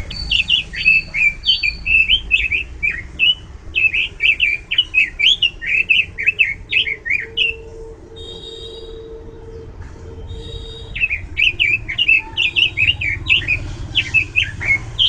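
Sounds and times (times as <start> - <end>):
bird singing bright warbling chirps and thin whistled notes: 0.0 - 15.0.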